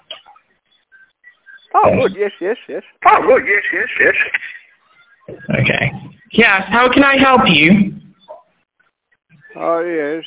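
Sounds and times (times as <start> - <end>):
speech: 1.8 - 4.6, 5.3 - 8.0, 9.6 - 10.2
dog barking: 8.2 - 8.5.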